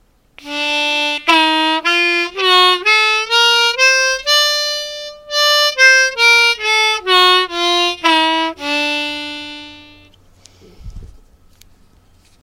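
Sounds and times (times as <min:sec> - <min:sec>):
harmonica: 0:00.4 - 0:10.2.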